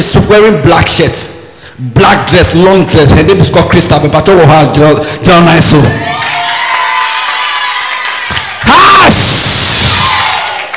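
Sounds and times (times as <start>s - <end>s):
speech: 0.0s - 6.4s
crowd shouting and cheering: 5.7s - 10.7s
sharp whoops: 5.9s - 10.7s.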